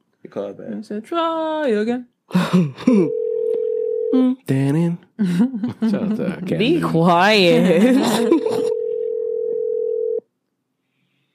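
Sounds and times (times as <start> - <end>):
speech: 0.3 - 3.2, 4.1 - 8.4
telephone dial tone: 3.1 - 4.2, 8.7 - 10.2
laughter: 5.2 - 6.8, 7.5 - 8.8.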